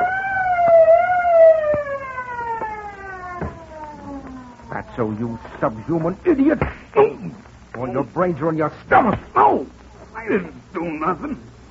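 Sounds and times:
truck anti-theft alarm siren wailing: 0.0s - 6.4s
sharp knocks: 3.4s - 3.7s
speech: 5.0s - 9.7s, 10.3s - 11.5s.

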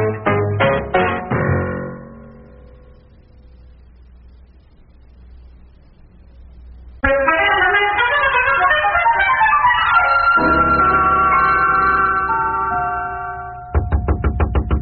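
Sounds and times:
music: 0.0s - 3.4s, 7.0s - 14.8s
rapid loud knocking on a door: 13.8s - 14.8s.

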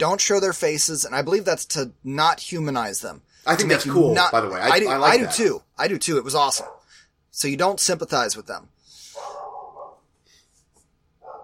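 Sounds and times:
speech: 0.0s - 8.8s
big dog barking: 6.5s - 6.9s, 9.2s - 10.0s, 11.2s - 11.4s.

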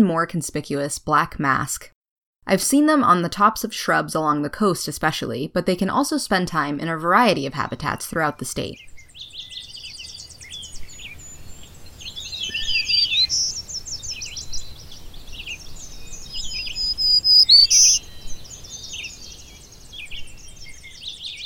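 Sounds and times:
speech: 0.0s - 9.3s
black-throated green warbler singing thin buzzy high-pitched phrases: 8.8s - 21.4s
faint bird chirps: 8.8s - 21.4s
insect hum: 10.2s - 21.0s.

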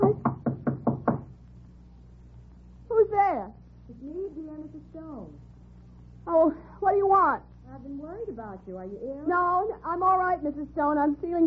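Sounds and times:
knocking on a door: 0.0s - 1.4s
speech: 6.4s - 11.4s.

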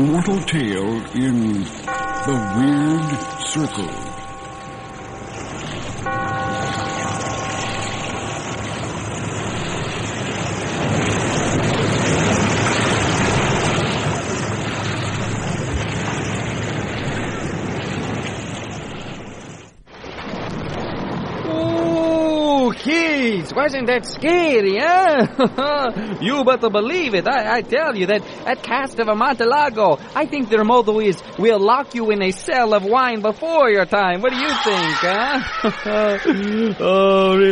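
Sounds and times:
speech: 0.0s - 4.1s, 23.5s - 37.5s
faint musical tones: 0.0s - 10.6s
restless sea waves surging and roaring in a lonely sea cave: 0.0s - 37.5s
laughter: 25.1s - 26.2s, 34.8s - 37.5s.

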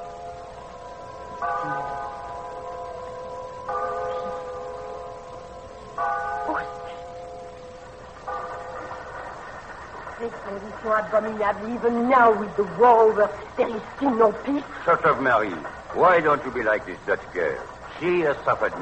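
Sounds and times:
bell tolling on a hill: 0.0s - 9.6s
speech: 10.3s - 18.8s.

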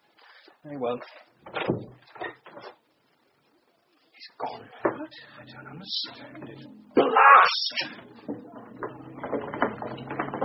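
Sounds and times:
speech: 0.6s - 2.3s, 4.4s - 9.3s
door opening with scraping and knocking: 7.8s - 10.4s.

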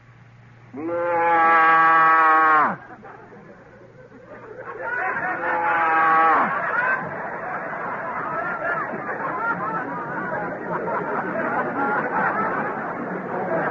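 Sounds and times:
man imitating a Holstein cow mooing: 0.8s - 2.8s
laughter: 2.1s - 13.6s.

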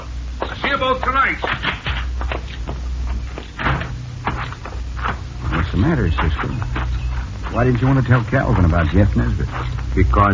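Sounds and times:
low steady hum: 0.0s - 10.3s
speech: 0.8s - 1.8s, 5.8s - 6.8s, 7.5s - 10.3s
back door opening and closing: 3.5s - 5.6s.

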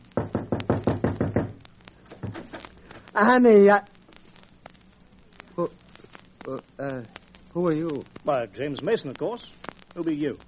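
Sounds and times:
knocking on the wooden door of a cottage: 0.2s - 1.6s
speech: 3.2s - 3.9s, 5.6s - 5.8s, 6.4s - 10.4s.

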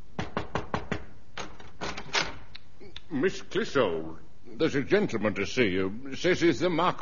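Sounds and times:
sharp knocks on a door: 0.2s - 1.5s
speech: 3.1s - 7.0s.

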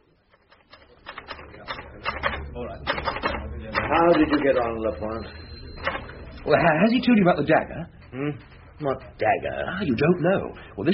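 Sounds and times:
typewriter keys clattering in an inspector's office: 0.3s - 4.5s
speech: 3.9s - 5.4s, 6.4s - 10.9s.

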